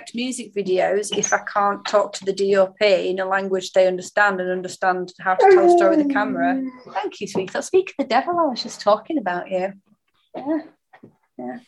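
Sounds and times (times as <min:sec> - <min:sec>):
speech: 0:00.1 - 0:11.6
dog whining and whimpering: 0:05.4 - 0:07.0.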